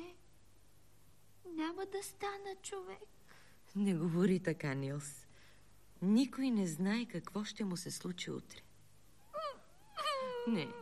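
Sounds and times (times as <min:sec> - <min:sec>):
speech: 0:01.6 - 0:05.3, 0:06.0 - 0:08.7, 0:10.4 - 0:10.7
boy crying in wailing sobs: 0:09.3 - 0:10.7.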